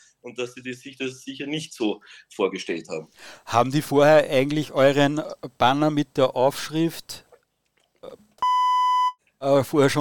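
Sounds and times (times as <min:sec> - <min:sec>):
speech: 0:00.2 - 0:07.2, 0:09.4 - 0:09.9
censor beep: 0:08.4 - 0:09.2.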